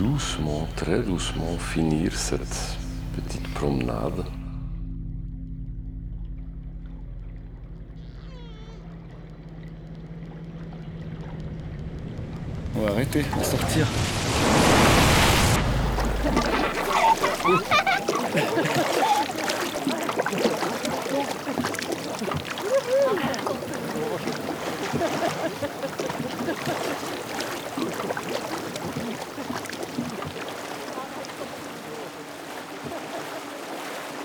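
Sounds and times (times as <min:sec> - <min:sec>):
speech: 0:00.0 - 0:04.4, 0:13.1 - 0:14.5, 0:17.4 - 0:17.8
small boat splashing and sloshing through water: 0:00.0 - 0:04.5, 0:06.7 - 0:34.2
rushing noise: 0:12.8 - 0:16.8
laughter: 0:16.0 - 0:21.6, 0:22.2 - 0:28.0, 0:32.8 - 0:33.5.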